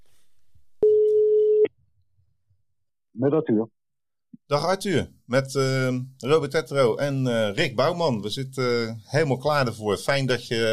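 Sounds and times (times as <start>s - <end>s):
telephone tone as a call is placed: 0.8s - 1.7s
speech: 3.2s - 3.8s, 4.5s - 10.7s.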